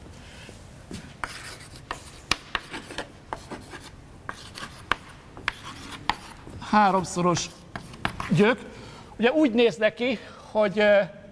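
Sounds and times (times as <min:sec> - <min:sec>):
sharp writing taps: 0:01.2 - 0:06.5, 0:07.4 - 0:08.4
pen or chalk scratching out a math equation: 0:01.2 - 0:08.4
speech: 0:06.8 - 0:07.6, 0:08.3 - 0:11.2.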